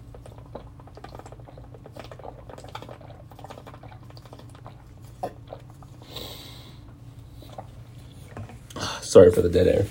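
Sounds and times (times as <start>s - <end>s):
person gulping water: 0.0s - 7.8s
wet mouth sounds: 0.0s - 8.2s
speech: 9.2s - 9.8s.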